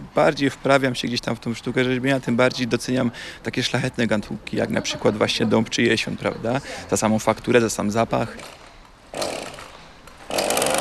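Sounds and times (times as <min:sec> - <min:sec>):
speech: 0:00.2 - 0:09.3
chainsaw cutting wood during woodcarving: 0:08.4 - 0:10.8.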